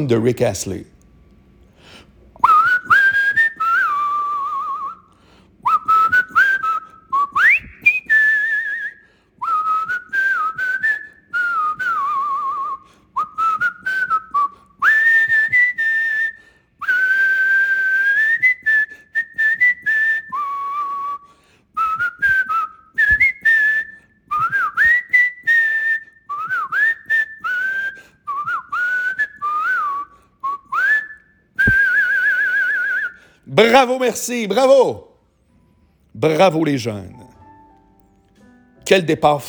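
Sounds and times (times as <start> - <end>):
speech: 0.0 - 0.9, 33.6 - 35.1, 36.2 - 37.2, 38.9 - 39.4
person whistling a pop song melody: 2.4 - 33.4.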